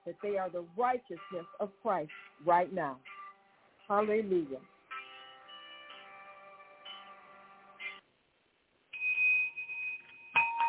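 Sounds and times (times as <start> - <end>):
speech: 0.0 - 3.2, 3.9 - 4.7
bell ringing with bright metallic tones: 9.0 - 10.6.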